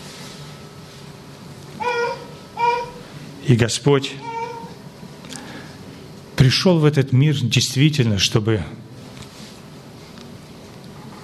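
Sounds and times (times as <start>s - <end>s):
quiet room hum: 0.0s - 11.2s
baby babbling: 1.8s - 3.1s, 4.1s - 4.8s
speech: 3.5s - 4.4s, 6.5s - 8.8s.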